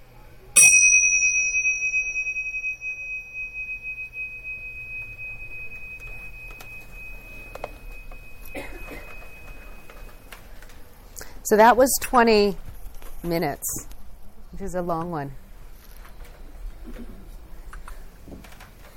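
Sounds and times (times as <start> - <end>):
faint low hum: 0.0 - 18.9
meditation bell struck and ringing: 0.6 - 10.6
speech: 11.5 - 12.6, 13.2 - 13.9, 14.6 - 15.4.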